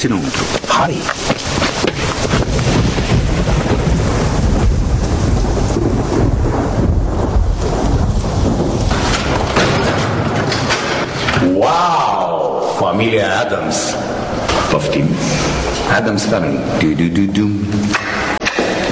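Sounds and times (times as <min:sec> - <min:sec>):
speech: 0:00.0 - 0:01.7, 0:13.0 - 0:18.1
rain outdoors: 0:00.0 - 0:17.0
wind gusts buffeting the microphone: 0:01.8 - 0:10.4.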